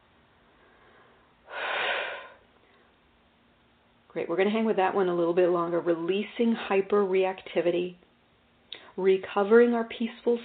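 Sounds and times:
long deep breath during a healing exercise: 0:00.5 - 0:03.0
speech: 0:04.2 - 0:08.0, 0:09.0 - 0:10.4.

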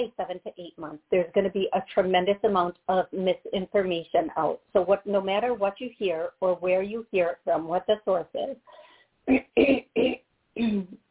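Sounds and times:
speech: 0:00.0 - 0:11.0
person clearing throat mid-talk: 0:09.3 - 0:11.0.

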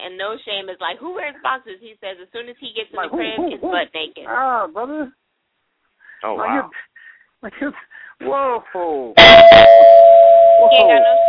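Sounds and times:
speech: 0:00.1 - 0:05.2, 0:06.2 - 0:09.9, 0:10.6 - 0:11.2
electric bell ringing: 0:09.2 - 0:11.2.

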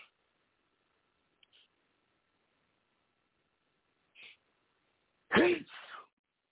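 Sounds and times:
person sneezing: 0:05.3 - 0:06.1.

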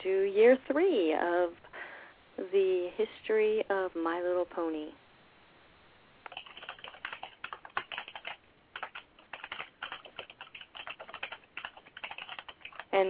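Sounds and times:
speech: 0:00.0 - 0:01.7, 0:02.4 - 0:05.0
fast furious typing on a typewriter: 0:06.3 - 0:13.0.

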